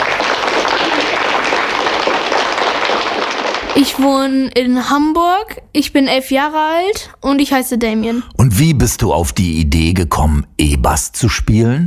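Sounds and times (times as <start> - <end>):
audience applause: 0.0 - 4.0
speech: 3.8 - 11.8.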